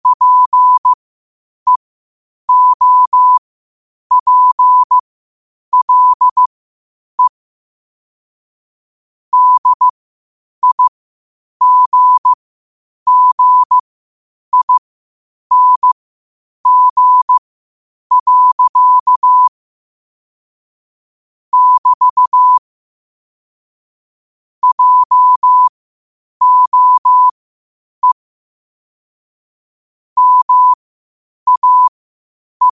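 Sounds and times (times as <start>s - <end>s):
Morse code beeps in a pure mid-pitched tone: 0.0s - 1.0s, 2.5s - 3.4s, 4.1s - 5.0s, 5.7s - 6.5s, 9.3s - 9.9s, 10.6s - 10.9s, 11.6s - 12.4s, 13.1s - 13.8s, 14.5s - 14.8s, 15.5s - 16.0s, 16.6s - 17.4s, 18.1s - 19.5s, 21.5s - 22.6s, 24.6s - 25.7s, 26.4s - 27.4s, 30.2s - 30.8s, 31.5s - 31.9s.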